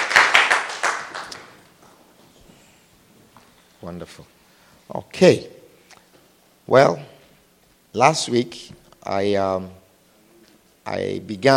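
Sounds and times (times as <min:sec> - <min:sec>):
sharp hand claps: 0:00.0 - 0:01.6
audience clapping: 0:00.0 - 0:01.8
speech: 0:03.8 - 0:05.6, 0:06.7 - 0:07.1, 0:07.9 - 0:09.8, 0:10.9 - 0:11.5.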